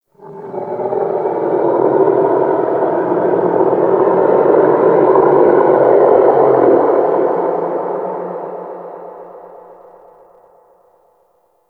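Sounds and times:
distant shipyard moan: 0:00.2 - 0:08.7.

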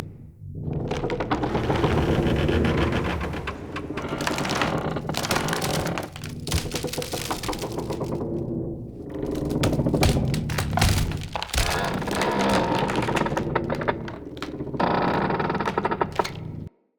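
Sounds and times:
crate creaking when pulled: 0:00.6 - 0:16.7.

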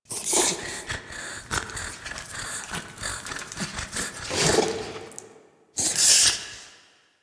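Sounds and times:
idle panting: 0:00.6 - 0:04.7.

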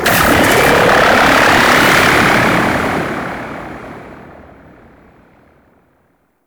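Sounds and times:
pursuit spaceship starting: 0:00.0 - 0:05.0.

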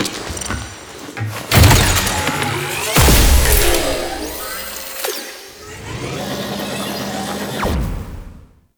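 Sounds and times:
swarm deploy scanner sound effect: 0:01.6 - 0:07.5.

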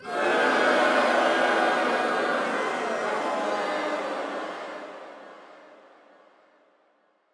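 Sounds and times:
crowd booing: 0:00.0 - 0:04.8.

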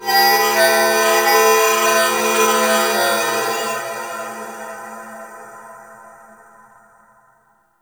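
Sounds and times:
temple moving bells: 0:00.0 - 0:04.0.

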